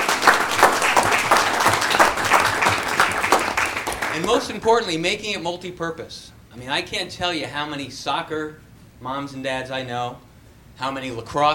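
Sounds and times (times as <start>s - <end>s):
crowd applauding: 0.0s - 5.2s
speech: 4.2s - 11.5s.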